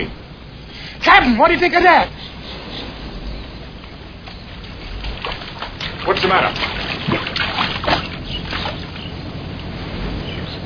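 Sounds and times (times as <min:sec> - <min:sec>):
speech: 0:01.1 - 0:02.2, 0:06.1 - 0:07.3
water rushing and splashing: 0:01.9 - 0:10.6
high-powered motorboat engine roaring on water: 0:02.0 - 0:10.6.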